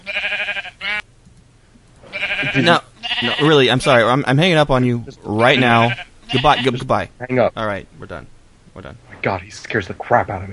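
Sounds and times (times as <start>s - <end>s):
sheep bleating: 0.0s - 1.0s, 2.1s - 3.7s, 5.4s - 6.8s
speech: 2.4s - 10.5s.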